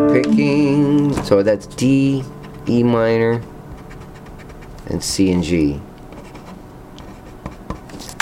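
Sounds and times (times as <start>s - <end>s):
speech: 0.1s - 3.5s, 4.9s - 5.9s
pencil writing on paper: 3.7s - 5.0s, 6.1s - 7.9s.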